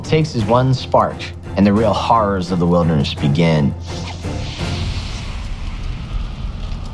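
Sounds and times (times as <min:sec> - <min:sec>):
speech: 0:00.1 - 0:04.3
deep booming explosions in battle: 0:03.9 - 0:06.9.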